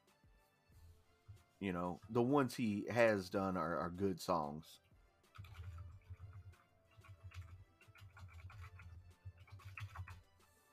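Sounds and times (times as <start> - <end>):
speech: 1.6 - 4.8
typing on a computer keyboard: 5.3 - 10.3.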